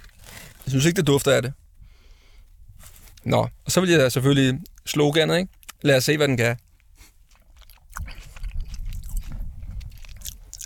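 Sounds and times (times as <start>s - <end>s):
speech: 0.7s - 1.6s, 3.2s - 6.6s
wet chewing of pepperoni pizza: 5.5s - 5.8s, 6.6s - 10.6s.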